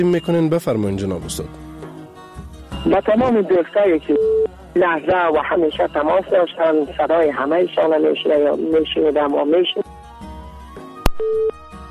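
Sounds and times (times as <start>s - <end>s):
speech: 0.0s - 1.7s, 2.8s - 9.9s, 11.2s - 11.5s
faint music: 0.0s - 11.6s
telephone busy-signal tone after a dropped phone-in call: 4.0s - 4.6s, 11.1s - 11.6s.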